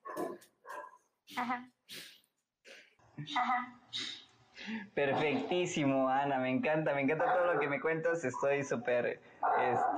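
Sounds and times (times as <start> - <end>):
dog barking: 0.0 - 1.1, 7.2 - 7.8, 9.4 - 9.9
speech: 1.3 - 2.1, 3.2 - 9.9.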